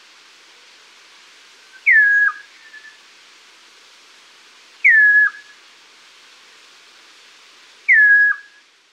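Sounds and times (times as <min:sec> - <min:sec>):
chestnut-crowned antpitta singing loud whistled phrases: 0:01.8 - 0:03.0, 0:04.8 - 0:05.5, 0:07.9 - 0:08.6.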